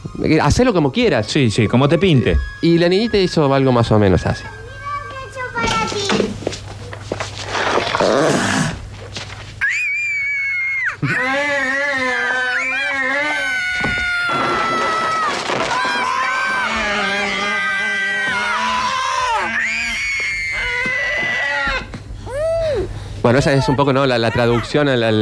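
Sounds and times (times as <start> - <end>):
speech: 0.1 - 4.6, 23.3 - 25.2
noisy commotion in a film scene: 1.6 - 22.6
young girl screaming in a dubbed film scene: 9.6 - 22.9.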